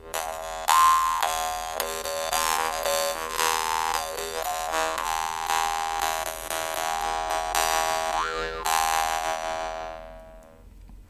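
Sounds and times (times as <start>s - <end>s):
dan moi jaw harp twanging: 0.1s - 10.5s.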